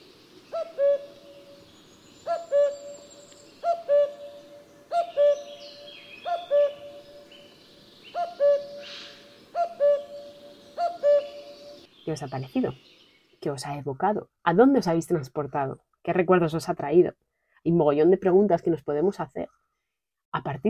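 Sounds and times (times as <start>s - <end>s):
faint higher birdsong twittering: 0.0s - 13.9s
common cuckoo calling: 0.5s - 11.9s
speech: 12.1s - 19.5s, 20.4s - 20.6s.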